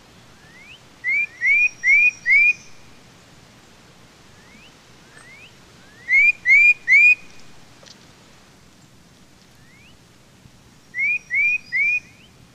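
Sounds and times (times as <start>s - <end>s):
tufted titmouse whistled calls: 0.4s - 2.8s, 4.4s - 7.4s, 9.6s - 10.0s, 10.9s - 12.4s.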